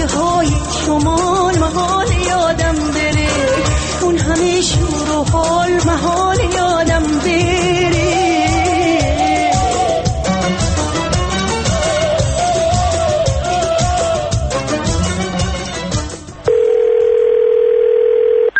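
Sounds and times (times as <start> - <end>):
upbeat music: 0.0 - 16.5
speech: 0.2 - 2.1, 4.4 - 7.8
ringback tone of a call to a mobile phone: 16.5 - 18.5.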